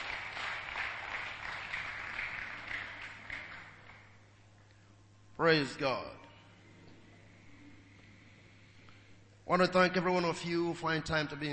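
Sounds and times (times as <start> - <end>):
church audience clapping as a clap offering: 0.0 - 4.2
speech: 5.4 - 6.3, 9.5 - 11.5.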